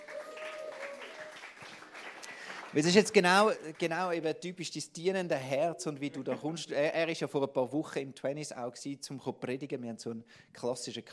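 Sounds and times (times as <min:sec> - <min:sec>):
crowd applause at a church service: 0:00.0 - 0:04.0
speech: 0:02.8 - 0:11.1.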